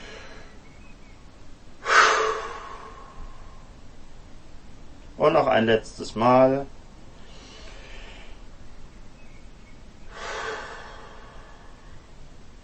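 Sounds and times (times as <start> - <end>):
deep breathing during a guided breathing exercise: 0.0 - 0.6, 1.8 - 3.8, 7.1 - 8.6, 10.1 - 12.2
speech: 5.2 - 6.8.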